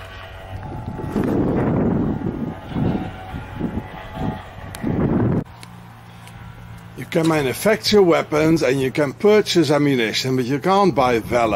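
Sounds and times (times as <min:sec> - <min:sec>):
gusty wind buffeting the microphone outdoors on a cold night: 0:00.0 - 0:05.6, 0:11.0 - 0:11.5
steady hum: 0:00.0 - 0:11.5
speech: 0:07.1 - 0:11.5.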